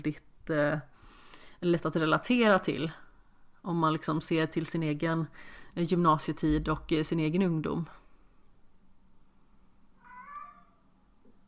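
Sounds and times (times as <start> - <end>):
speech: 0.0 - 0.9, 1.6 - 3.0, 3.6 - 8.0
low steady hum: 0.0 - 11.4
cat meowing: 10.0 - 10.9.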